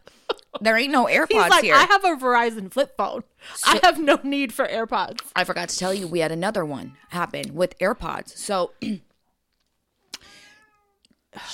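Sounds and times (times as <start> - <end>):
speech: 0.6 - 9.1, 11.4 - 11.5
cat meowing: 10.1 - 11.0.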